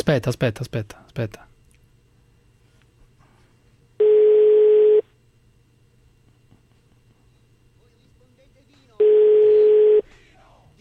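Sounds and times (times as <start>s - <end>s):
speech: 0.0s - 1.5s
telephone call tone beeps while waiting for an answer: 4.0s - 5.0s, 9.0s - 10.0s.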